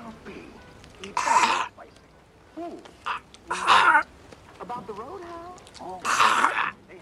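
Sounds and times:
harsh hacking coughs to bring up popcorn: 1.2 - 1.7, 6.1 - 6.6.

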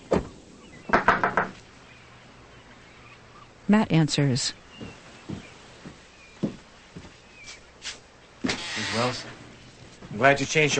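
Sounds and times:
knocking on the screen door of a house: 0.9 - 1.6
speech: 3.7 - 4.6, 9.0 - 9.4, 10.2 - 10.7.

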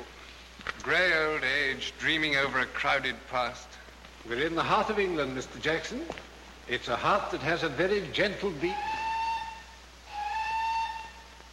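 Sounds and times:
speech: 0.8 - 9.0
steam train whistle blast: 8.7 - 11.5.

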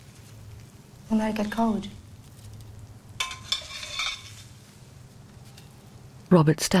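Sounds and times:
faint sizzle: 0.0 - 6.7
speech: 1.1 - 2.0, 6.3 - 6.7
utensil scraping scrambled eggs out of a frying pan onto a plate: 1.8 - 6.0.

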